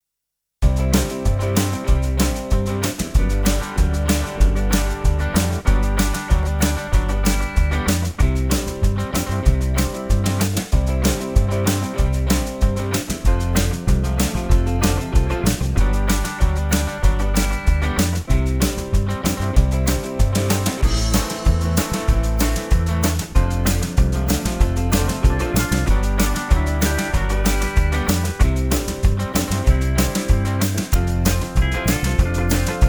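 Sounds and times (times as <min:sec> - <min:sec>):
zydeco music: 0:00.6 - 0:32.8.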